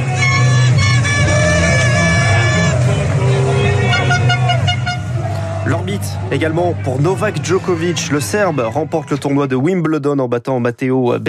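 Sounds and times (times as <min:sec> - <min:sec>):
many car horns honking in a street celebration: 0:00.0 - 0:05.3
engine rumble: 0:00.0 - 0:07.0
crowd cheering babble: 0:00.0 - 0:09.8
speech: 0:06.3 - 0:11.2.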